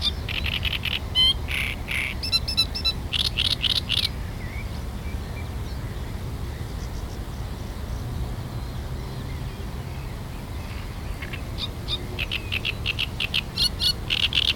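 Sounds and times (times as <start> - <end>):
great reed warbler song with coarse croaking chatter: 0.0 - 4.2, 11.1 - 14.5
continuous low-pitched background noise: 0.0 - 14.5.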